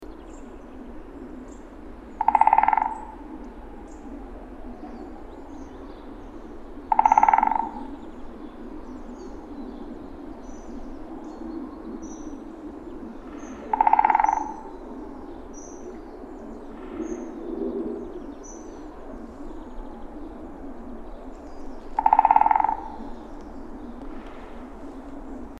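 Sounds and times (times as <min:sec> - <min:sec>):
great spotted woodpecker drumming: 0:02.1 - 0:03.7, 0:06.8 - 0:08.3, 0:13.0 - 0:16.0, 0:21.8 - 0:24.8.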